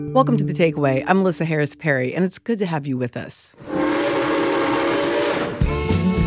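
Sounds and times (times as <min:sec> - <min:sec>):
speech: 0:00.2 - 0:03.7
rushing hiss of steam: 0:03.6 - 0:05.8
sustained chugging tones: 0:03.6 - 0:06.0
steam train whistle: 0:03.6 - 0:06.1.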